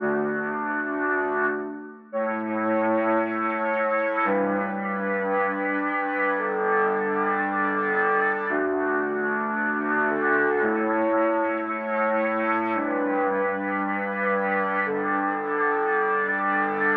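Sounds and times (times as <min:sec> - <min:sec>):
chords at 113 BPM: 0:00.0 - 0:16.9.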